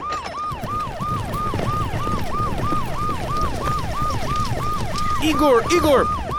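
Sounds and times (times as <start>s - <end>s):
emergency siren yelping: 0.0s - 6.3s
speech: 5.2s - 6.2s.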